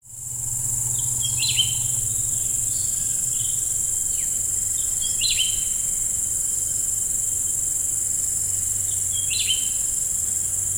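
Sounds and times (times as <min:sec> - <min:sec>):
greater green leafbird singing downward-swooping whistles: 0:01.0 - 0:05.8, 0:08.9 - 0:09.8.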